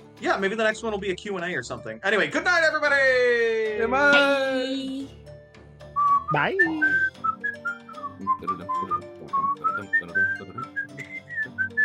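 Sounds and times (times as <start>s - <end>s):
speech: 0.2s - 5.2s, 6.3s - 7.1s, 8.2s - 9.0s
person whistling a bouncy theme melody: 5.9s - 11.8s.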